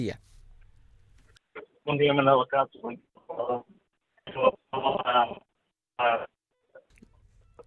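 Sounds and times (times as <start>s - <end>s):
speech: 0.0s - 0.3s, 1.9s - 5.4s
distorted voice through a poor mobile phone connection: 2.8s - 7.0s.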